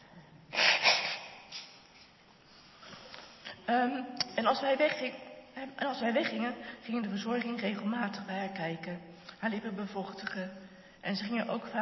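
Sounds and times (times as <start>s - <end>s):
sniffs and snorts: 0.5s - 1.8s
nose blowing: 0.5s - 1.9s
speech: 3.7s - 11.8s.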